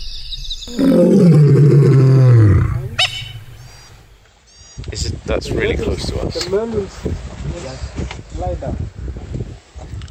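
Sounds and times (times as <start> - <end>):
speech: 0.7 - 1.4, 5.0 - 9.3
lioness snarling roar at a male lion: 0.7 - 3.5
brief sharp yelp-like burst: 3.0 - 3.8.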